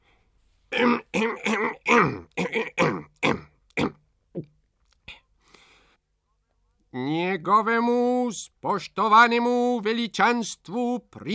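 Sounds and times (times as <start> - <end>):
person performing a drawn-out dignified throat clearing: 0.7 - 4.5
speech: 7.5 - 11.3.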